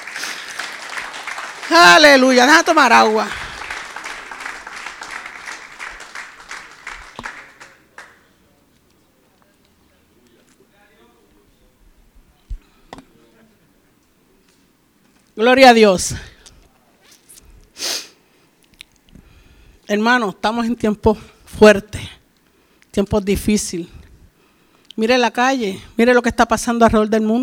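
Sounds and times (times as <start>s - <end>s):
audience applauding: 0.0s - 8.4s
speech: 1.7s - 3.4s, 15.4s - 16.3s, 19.9s - 22.1s, 22.9s - 24.0s, 25.0s - 27.4s.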